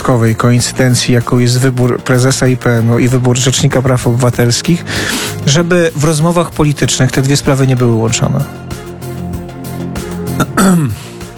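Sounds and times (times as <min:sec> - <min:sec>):
speech: 0:00.1 - 0:08.9, 0:10.6 - 0:11.1
throat clearing: 0:10.4 - 0:11.1.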